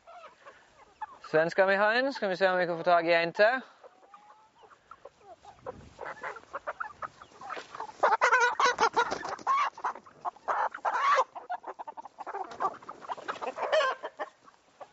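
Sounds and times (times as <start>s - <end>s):
several chickens and hens clucking and chattering: 0.0s - 14.9s
speech: 1.3s - 3.8s
young rooster's rough squeaky calls: 6.0s - 9.8s, 10.4s - 11.5s, 13.4s - 14.3s.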